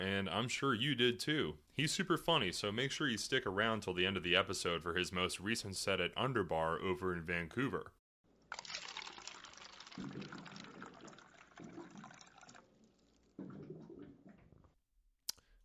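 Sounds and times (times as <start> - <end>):
speech: 0.0 - 8.6, 10.0 - 10.4
water cooler gurgling and bubbling as it fills: 8.5 - 14.8.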